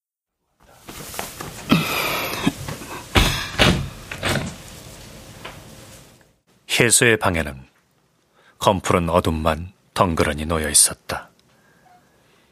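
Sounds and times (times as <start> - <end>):
room door creaking and scraping as it swings: 2.6 - 6.2
speech: 6.8 - 7.7, 8.6 - 11.3.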